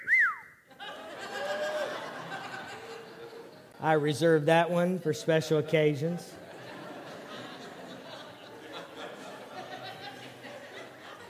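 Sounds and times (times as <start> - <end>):
short loud whistle signaling a fish on the line: 0.0 - 0.6
audience laughter and murmuring: 0.7 - 4.0, 5.5 - 11.2
speech: 3.8 - 6.4.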